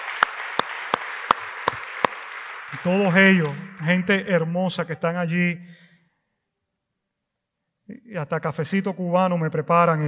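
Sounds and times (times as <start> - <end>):
audience applause: 0.0 - 4.1
one pair of hands clapping loudly in a slow even rhythm: 0.0 - 4.1
speech: 2.7 - 5.8, 8.1 - 10.0.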